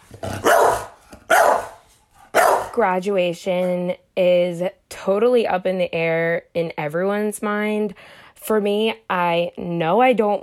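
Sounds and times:
dog barking: 0.3s - 2.8s
speech: 2.8s - 10.4s.

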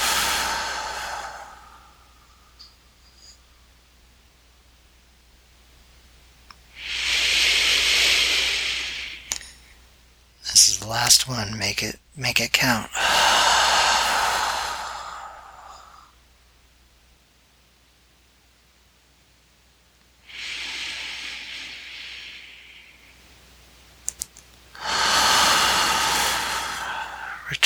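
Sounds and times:
deep breaths taken during a breathing exercise: 0.0s - 3.8s, 6.8s - 9.8s, 12.9s - 16.2s, 20.2s - 23.2s, 24.8s - 27.6s
speech: 11.1s - 13.1s.

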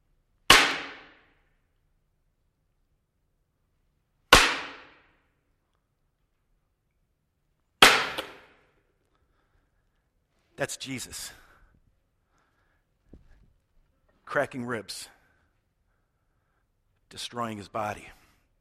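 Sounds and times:
one-inch wooden dowel rod striking: 7.8s - 8.6s
speech: 10.6s - 11.4s, 14.3s - 15.2s, 17.1s - 18.2s.

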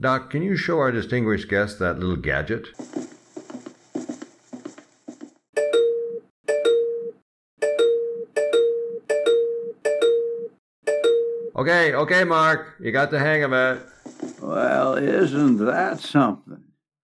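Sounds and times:
speech: 0.0s - 3.0s, 11.6s - 16.7s
push-button electronic doorbell ringing: 5.6s - 11.5s.

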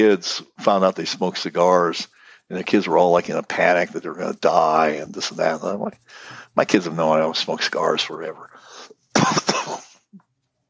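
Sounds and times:
speech: 0.0s - 9.8s
faint throaty sound: 0.0s - 10.3s
harsh raspy cough: 9.1s - 10.0s.

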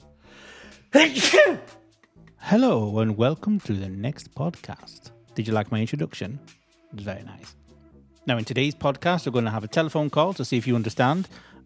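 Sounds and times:
speech: 0.7s - 1.8s, 2.4s - 7.6s, 8.2s - 11.6s
person sneezing: 0.8s - 1.8s.

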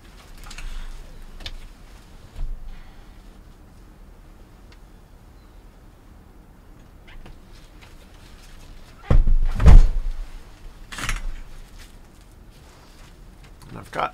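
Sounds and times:
shuffling and handling noises: 0.0s - 4.9s, 6.8s - 14.1s
propped-open door pushed shut with a solid thud: 9.0s - 10.3s
speech: 14.0s - 14.1s.

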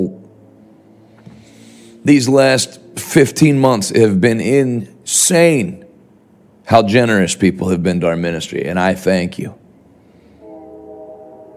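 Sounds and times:
speech: 2.0s - 5.8s, 6.7s - 9.6s
train horn: 10.2s - 11.5s.

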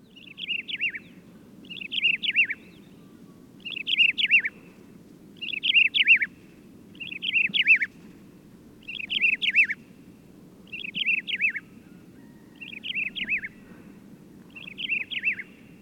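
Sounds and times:
desert lark singing short clear whistled phrases: 0.0s - 4.8s, 5.4s - 7.9s, 8.8s - 9.8s, 10.6s - 13.7s, 14.5s - 15.8s.

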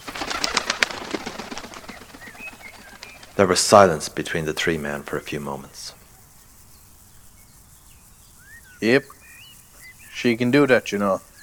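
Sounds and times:
faint thin bird calls: 0.0s - 3.6s, 4.7s - 11.4s
crow wings flapping taking flight: 0.0s - 6.6s
rustling: 0.0s - 11.4s
speech: 3.4s - 6.0s, 8.8s - 9.2s, 10.2s - 11.3s.

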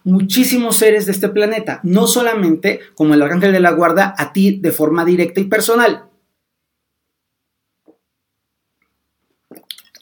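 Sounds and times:
speech: 0.0s - 6.1s
wet mouth and swallowing sounds: 8.8s - 10.0s
person taking a small sip of water: 9.3s - 10.0s.

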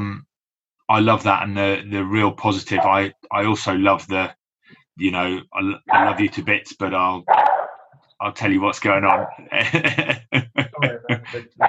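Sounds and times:
speech: 0.9s - 4.4s, 5.0s - 7.5s, 8.2s - 11.6s
person imitating dog barking: 5.9s - 6.3s, 9.0s - 9.6s, 10.8s - 11.6s
laughter: 9.3s - 11.6s.

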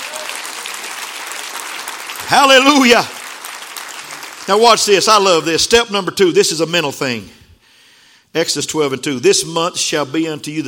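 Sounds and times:
audience applause: 0.0s - 5.4s
speech: 2.3s - 3.2s, 4.5s - 7.4s, 8.3s - 10.6s.

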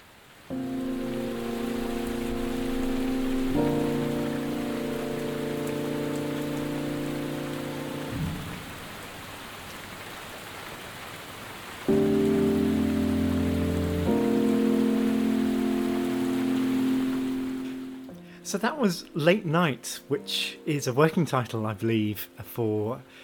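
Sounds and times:
steady dense rain in Cambridge: 0.0s - 20.8s
speech: 18.5s - 23.2s.

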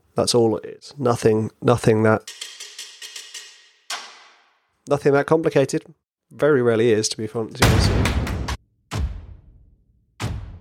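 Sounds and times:
speech: 0.2s - 2.5s, 4.9s - 8.2s
music track with click rhythm: 2.2s - 4.3s, 10.2s - 10.5s
drumsticks clicking a ticking-clock rhythm: 2.3s - 4.2s.

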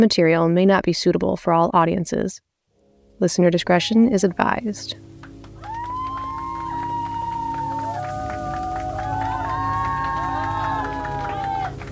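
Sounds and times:
speech: 0.0s - 2.5s, 3.2s - 5.1s
faint scattered clapping: 5.2s - 11.9s
group of people cheering with whoops: 5.3s - 11.9s.

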